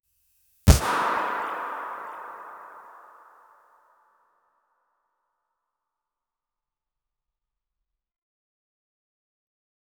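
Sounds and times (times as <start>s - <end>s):
logo hit: 0.7s - 1.3s.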